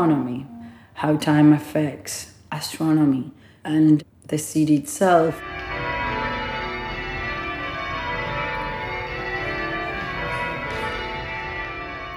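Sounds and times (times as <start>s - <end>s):
speech: 0.0s - 5.6s
cathedral church bells pealing: 5.3s - 12.1s.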